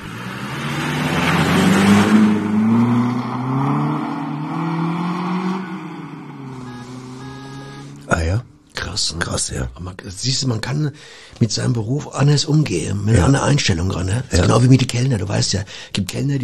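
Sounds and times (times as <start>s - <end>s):
mail carrier's vehicle engine driving off: 0.0s - 8.7s
speech: 9.5s - 16.4s.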